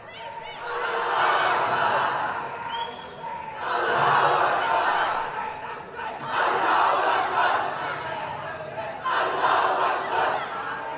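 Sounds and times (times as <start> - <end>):
large outdoor crowd chanting a slogan in unison in town square: 0.0 - 10.9.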